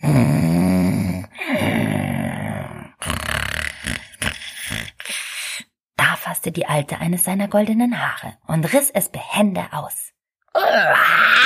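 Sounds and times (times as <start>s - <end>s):
person imitating loud heavy snoring: 0.0s - 5.4s
speech: 6.4s - 11.4s.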